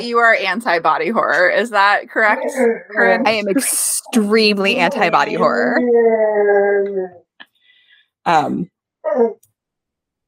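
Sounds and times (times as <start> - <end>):
speech: 0.0 - 7.2, 8.2 - 9.5
male pet dog howling: 5.7 - 7.3, 9.0 - 9.4.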